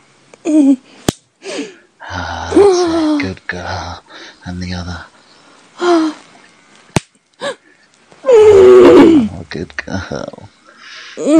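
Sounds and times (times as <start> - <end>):
speech: 0.4 - 5.1, 8.9 - 10.5, 11.2 - 11.3
hand slapping a bare breast: 6.9 - 7.2.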